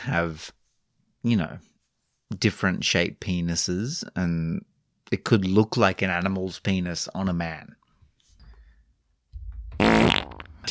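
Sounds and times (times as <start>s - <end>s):
speech: 0.0s - 0.6s, 1.2s - 1.7s, 2.3s - 7.8s, 9.8s - 10.7s
fart sound effects: 9.8s - 10.6s.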